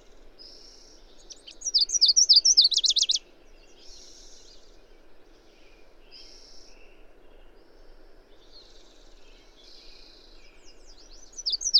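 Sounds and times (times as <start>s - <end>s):
bird song of high thin sliding whistles and rapid trill: 1.4s - 3.2s, 11.4s - 11.7s.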